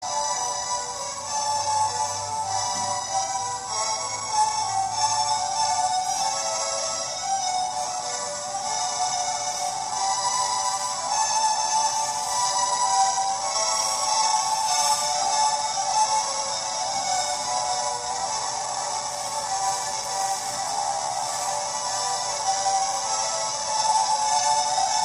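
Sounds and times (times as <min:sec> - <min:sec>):
classical piece: 0:00.0 - 0:25.0.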